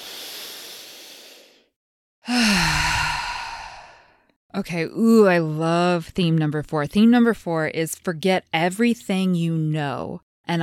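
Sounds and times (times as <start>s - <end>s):
louder sighing exhale with a voiced tone: 0.0s - 1.7s, 2.3s - 4.2s
deep breath drawn in through the nose: 0.0s - 4.2s
speech: 4.6s - 10.6s.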